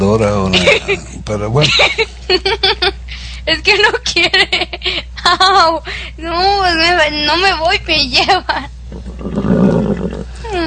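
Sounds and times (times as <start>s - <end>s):
speech: 0.0s - 9.7s
horse whinnying: 8.9s - 10.4s.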